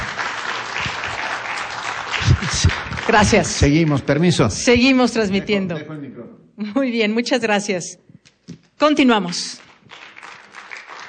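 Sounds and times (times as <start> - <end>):
crowd applauding for a team: 0.0 - 4.7, 9.3 - 11.0
speech: 2.5 - 8.1, 8.8 - 10.0.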